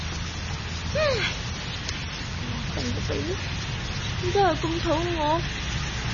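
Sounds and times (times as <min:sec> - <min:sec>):
rain falling: 0:00.0 - 0:06.1
speech: 0:04.2 - 0:05.6.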